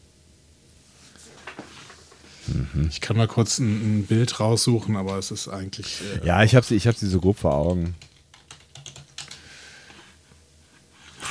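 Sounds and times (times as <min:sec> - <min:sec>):
speech: 0:02.5 - 0:08.1
rapid keystrokes on a computer keyboard: 0:06.8 - 0:09.4.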